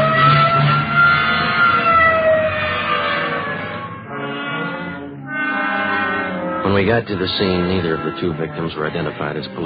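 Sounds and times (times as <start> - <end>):
police car siren wailing: 0.0 - 9.6
speech: 6.8 - 9.6.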